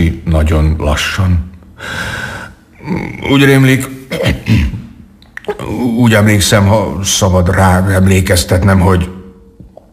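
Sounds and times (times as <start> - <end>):
speech: 0.0 - 4.8, 5.5 - 9.1
person coughing: 4.1 - 4.9
person clearing throat: 4.1 - 5.7.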